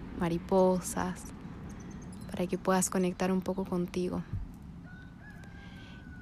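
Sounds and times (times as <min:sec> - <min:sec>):
steady low outdoor rumble: 0:00.0 - 0:06.2
speech: 0:00.2 - 0:01.4, 0:02.4 - 0:04.4
rooster crowing: 0:04.8 - 0:06.2.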